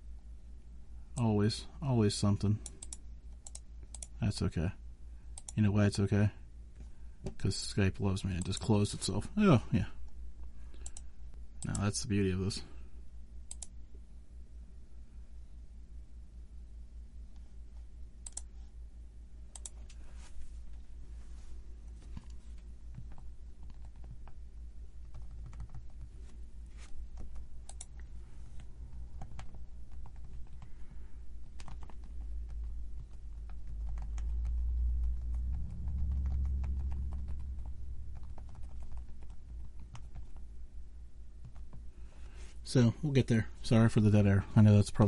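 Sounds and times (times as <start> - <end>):
steady low hum: 0.0 - 45.0
speech: 1.5 - 2.8, 4.2 - 4.8, 5.6 - 6.4, 7.2 - 10.0, 11.6 - 12.7, 42.8 - 45.0
typing on a computer keyboard: 22.9 - 24.4, 25.0 - 26.1, 29.2 - 30.7, 31.5 - 40.4.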